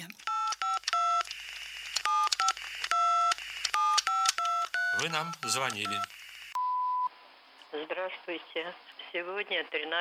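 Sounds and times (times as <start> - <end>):
two-tone electronic beeps from a telephone answering machine: 0.3 - 1.3, 2.0 - 7.1
speech: 5.0 - 6.2, 7.9 - 9.9.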